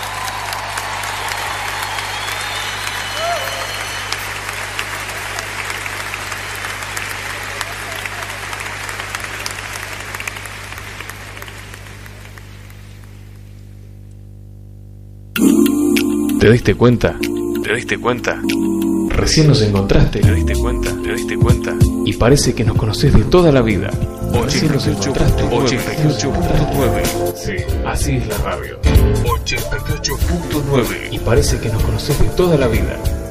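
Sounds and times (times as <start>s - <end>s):
audience applause: 0.0s - 13.0s
speech: 16.4s - 33.1s.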